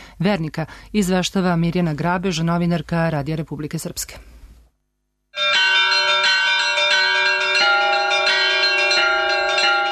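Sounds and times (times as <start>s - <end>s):
speech: 0.2s - 4.3s
church bells ringing at midnight to mark Christmas: 5.4s - 9.9s.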